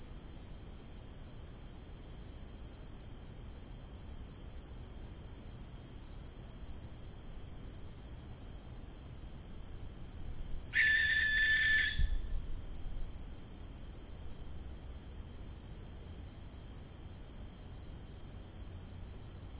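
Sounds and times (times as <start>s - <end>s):
continuous high-pitched insect trill: 5.4s - 19.5s
young barn owl rasping breathy screech: 10.7s - 12.3s.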